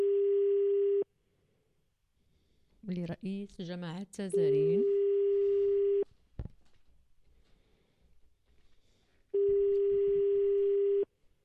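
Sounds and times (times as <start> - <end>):
telephone ringback tones from a call placed to a mobile number: 0.0 - 1.1, 4.4 - 6.0, 9.3 - 11.1
speech: 2.9 - 5.0.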